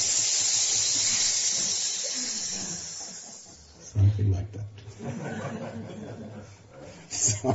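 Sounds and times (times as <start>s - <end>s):
audience hissing imitating snakes: 0.0s - 4.0s
laughter: 2.1s - 7.5s
speech: 3.9s - 7.5s.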